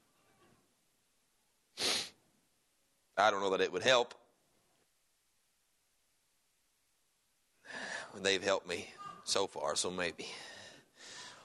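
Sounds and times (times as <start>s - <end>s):
person blowing nose: 1.8s - 2.2s
speech: 3.2s - 4.2s, 8.1s - 10.6s.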